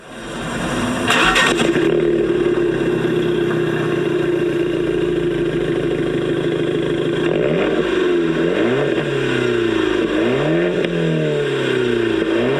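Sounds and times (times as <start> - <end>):
Fiat 500X small car engine idling and revving: 0.0 - 12.5.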